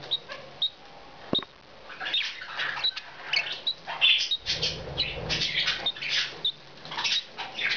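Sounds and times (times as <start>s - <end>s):
female budgerigar squeaking: 2.0s - 7.7s.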